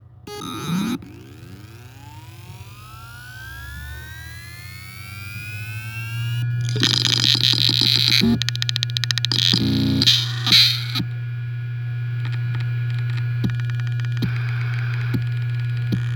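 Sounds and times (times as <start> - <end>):
Seagate EXOS ST10000NM001G hard drive spinning up: 0.0 - 16.1.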